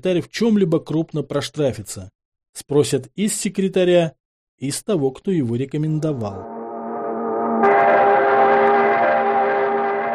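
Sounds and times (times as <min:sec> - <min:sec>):
speech: 0:00.0 - 0:06.5
mournful shrill factory whistle outside factory administration building walls: 0:06.4 - 0:10.1.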